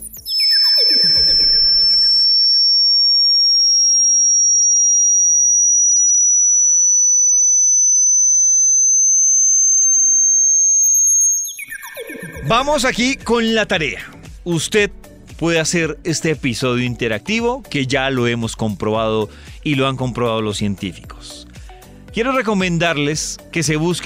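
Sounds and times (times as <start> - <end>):
swooping electronic sweeps: 0.0 - 13.6
high-pitched hearing test tone gliding upward from 8000 to 11900 Hz: 0.0 - 13.8
speech: 12.5 - 21.5, 22.1 - 24.0.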